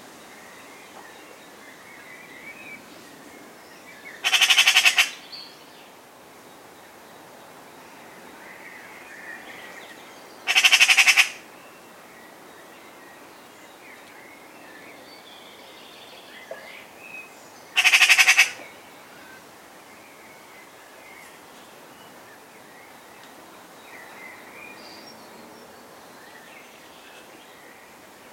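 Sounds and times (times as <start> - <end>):
Eurasian magpie Pica pica harsh rattling chatters: 4.2 - 5.2, 10.5 - 11.4, 17.8 - 18.6.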